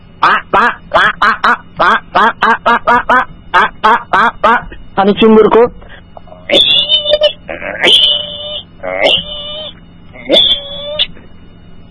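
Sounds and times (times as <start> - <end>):
human voice imitating duck quacks: 0.2 - 4.7, 6.4 - 11.1
speech: 0.6 - 3.1, 5.0 - 5.8.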